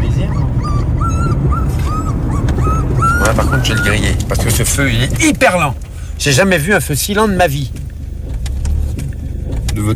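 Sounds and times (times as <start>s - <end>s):
dog whimpering and yipping: 0.0s - 4.4s
steady low rumble: 0.0s - 9.9s
speech: 3.6s - 7.9s, 9.8s - 9.9s.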